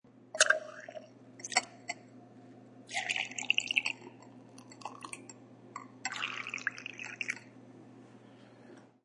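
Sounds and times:
beer pouring from weak tap in a bar: 2.9s - 7.5s.

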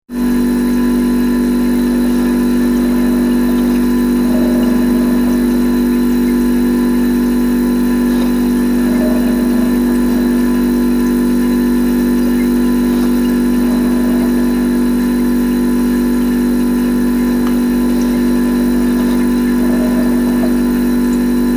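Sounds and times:
refrigerator chiller drone: 0.1s - 21.5s.

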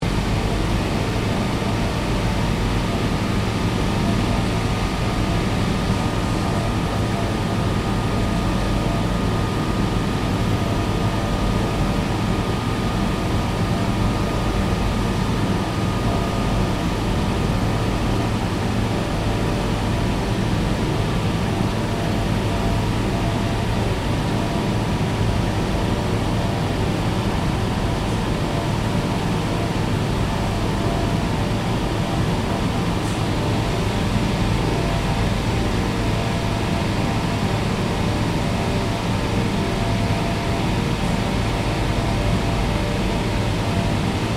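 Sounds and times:
industrial plant room ambience: 0.0s - 44.3s.

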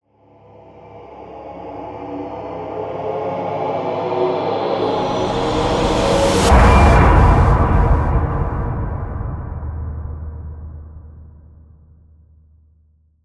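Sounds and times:
horror music crescendo: 0.4s - 11.5s
impact hit: 5.0s - 11.8s.

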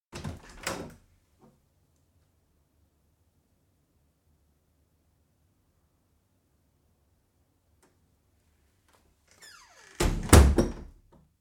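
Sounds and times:
interior back door opening and closing: 0.2s - 1.0s, 9.3s - 11.0s.

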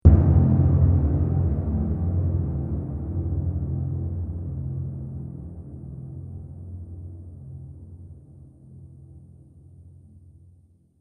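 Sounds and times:
trailer drum hit: 0.0s - 4.9s.

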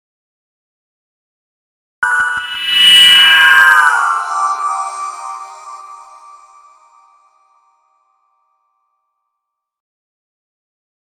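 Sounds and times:
hit burst swell with shimmering delay: 2.0s - 6.9s.

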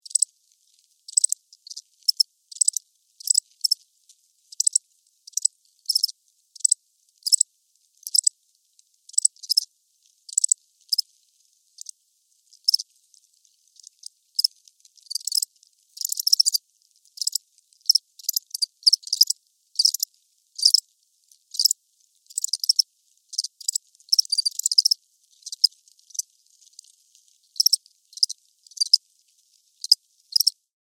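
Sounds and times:
crickets chirping close: 0.0s - 0.3s, 1.1s - 3.8s, 4.5s - 8.3s, 9.1s - 9.7s, 10.3s - 11.0s, 12.6s - 12.8s, 13.8s - 16.6s, 17.2s - 20.8s, 21.5s - 26.9s, 27.6s - 29.0s, 29.8s - 30.6s
insect movement close: 0.0s - 30.7s.

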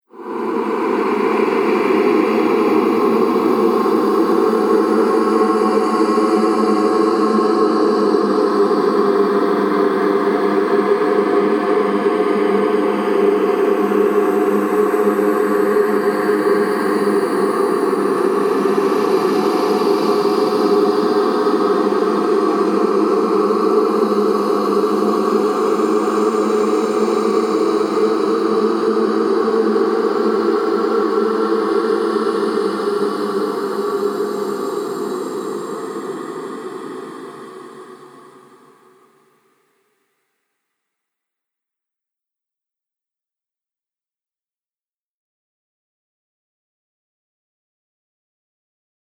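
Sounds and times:
haunted voices drone: 0.1s - 39.0s.

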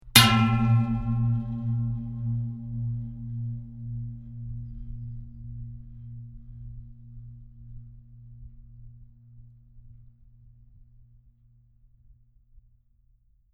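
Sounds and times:
resonating metal pipe impact with long gong-like ring: 0.1s - 8.6s.

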